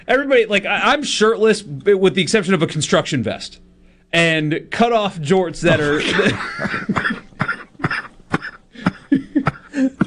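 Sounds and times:
speech: 0:00.1 - 0:07.1
repeated coughing: 0:05.7 - 0:10.0
breathy laughter: 0:05.8 - 0:10.0.

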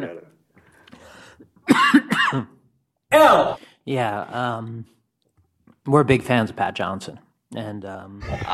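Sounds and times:
person coughing: 0:01.6 - 0:02.6
voiced rumbling throat clearing: 0:01.7 - 0:02.6
speech: 0:01.8 - 0:02.5, 0:03.2 - 0:05.0, 0:05.8 - 0:08.5.

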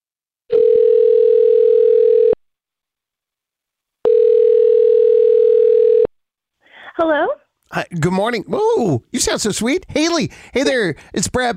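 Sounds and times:
telephone line tone while placing a call: 0:00.5 - 0:02.4, 0:04.0 - 0:06.1
speech: 0:07.0 - 0:11.5.

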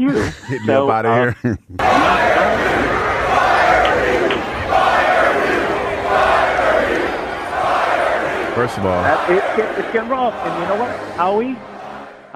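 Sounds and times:
speech: 0:00.0 - 0:02.3, 0:08.6 - 0:11.7
laughter: 0:00.0 - 0:12.1
large crowd shouting angrily: 0:01.8 - 0:12.3.

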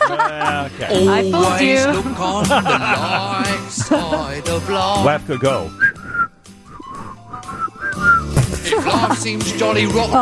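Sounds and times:
laughter: 0:00.0 - 0:05.1, 0:08.0 - 0:09.9
speech: 0:00.1 - 0:05.8, 0:08.8 - 0:10.2
people whistling a tune badly: 0:05.6 - 0:08.4.

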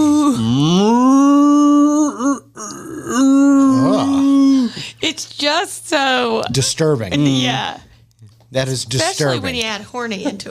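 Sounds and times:
person imitating a cow mooing: 0:00.0 - 0:04.7
speech: 0:05.6 - 0:07.9, 0:08.5 - 0:10.5.

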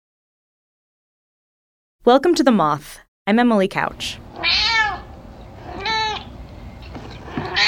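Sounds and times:
speech: 0:02.0 - 0:04.7
domestic cat meowing: 0:04.3 - 0:06.3, 0:07.3 - 0:07.6.

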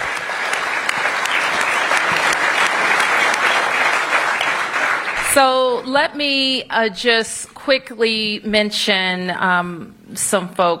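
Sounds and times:
audience applause: 0:00.0 - 0:05.7
speech: 0:05.4 - 0:10.7.

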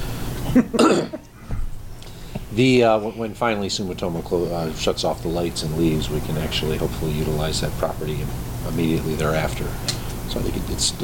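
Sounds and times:
speech: 0:00.5 - 0:01.3, 0:02.6 - 0:11.0
person clearing throat from something stuck in the throat: 0:00.6 - 0:01.3
person coughing from something stuck in the throat: 0:00.6 - 0:01.3.

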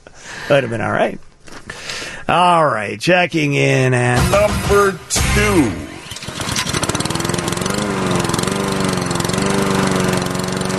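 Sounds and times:
speech: 0:00.5 - 0:01.3, 0:02.3 - 0:05.9
gas lawn mower engine running: 0:04.2 - 0:10.7.

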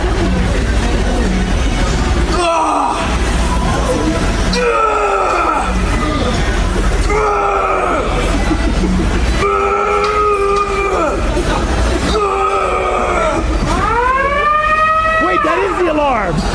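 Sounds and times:
room noise: 0:00.0 - 0:16.5
gym lunk alarm siren: 0:13.8 - 0:16.0.

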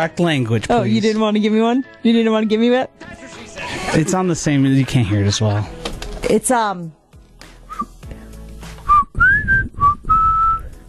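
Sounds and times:
speech: 0:00.0 - 0:07.0
person whistling breathily: 0:07.7 - 0:08.0, 0:08.8 - 0:10.8.

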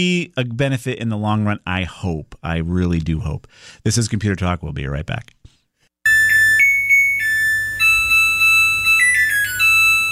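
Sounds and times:
speech: 0:00.0 - 0:05.4
washing machine end-of-cycle electronic beeping melody: 0:06.1 - 0:10.1.

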